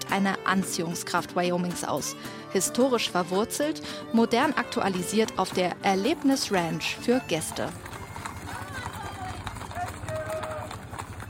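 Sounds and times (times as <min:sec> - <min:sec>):
herd of a hundred horses trotting downhill past a guest ranch in Wyoming: 0:00.0 - 0:11.2
speech: 0:00.1 - 0:07.9
whinny-like tone from a horse herd: 0:06.6 - 0:11.2.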